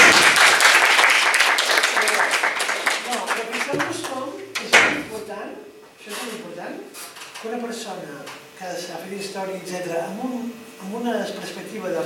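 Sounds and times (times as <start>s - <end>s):
crowd applauding with dense clapping: 0.0s - 4.3s
speech: 9.3s - 12.0s.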